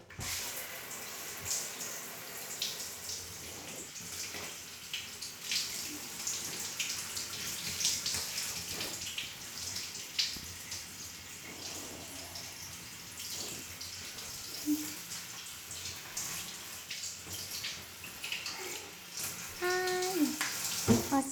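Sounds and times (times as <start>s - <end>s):
shower water spraying: 0.2s - 21.3s
faint voice murmuring: 19.6s - 20.4s.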